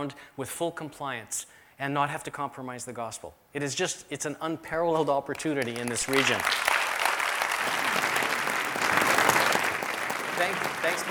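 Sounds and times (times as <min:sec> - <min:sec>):
speech: 0:00.0 - 0:06.8, 0:10.4 - 0:11.0
crowd applauding: 0:05.3 - 0:11.0.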